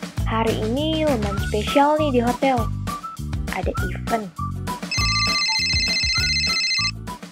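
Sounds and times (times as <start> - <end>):
speech: 0.3 - 2.8, 3.6 - 4.4
loud musical phone ringtone: 4.9 - 7.0.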